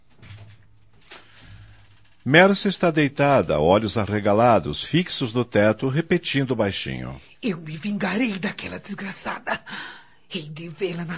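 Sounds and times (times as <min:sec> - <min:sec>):
wooden door opening with a latch clunk: 0:00.0 - 0:02.5
speech: 0:02.2 - 0:11.1.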